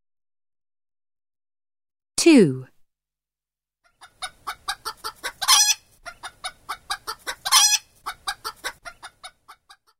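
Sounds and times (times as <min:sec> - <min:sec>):
speech: 0:02.2 - 0:02.7
chicken clucking: 0:03.9 - 0:09.9.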